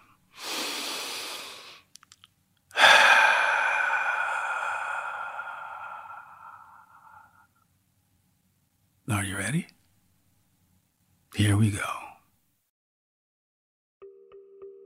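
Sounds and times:
person taking a deep breath: 0.3s - 1.9s, 2.7s - 7.6s
speech: 11.6s - 12.0s.

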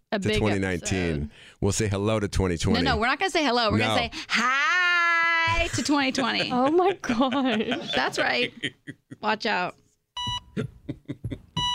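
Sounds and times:
speech: 0.2s - 4.9s, 5.5s - 9.8s
laughter: 5.5s - 9.3s, 10.6s - 11.6s
loud steady electronic beeps: 10.2s - 10.6s, 11.6s - 11.7s.

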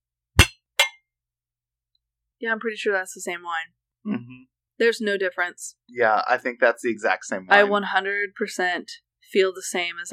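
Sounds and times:
wine glasses clinking in a toast: 0.4s - 1.0s
speech: 2.4s - 10.1s.

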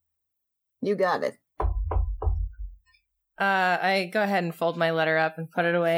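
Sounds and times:
speech: 0.8s - 1.4s, 3.4s - 5.9s
knocking on a wooden door: 1.6s - 2.9s.

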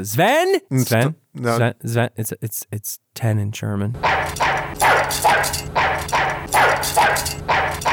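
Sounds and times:
speech: 0.0s - 7.9s
dog barking energetically: 4.0s - 5.1s, 5.8s - 7.9s.

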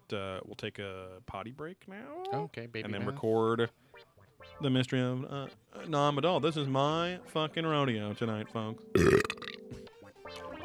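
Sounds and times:
speech: 0.1s - 3.8s, 4.4s - 9.4s
long loud belch: 8.9s - 9.6s.

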